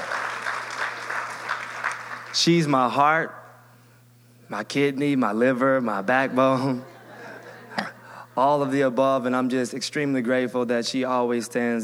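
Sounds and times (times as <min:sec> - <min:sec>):
crowd clapping: 0:00.0 - 0:02.5
speech: 0:02.3 - 0:03.4, 0:04.5 - 0:06.9, 0:07.8 - 0:11.8
laughter: 0:05.8 - 0:08.9.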